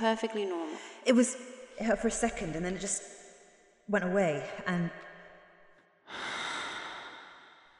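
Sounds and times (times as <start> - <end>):
speech: 0.0 - 3.2, 3.9 - 5.1
deep forceful breath during a breathing exercise: 6.1 - 7.7.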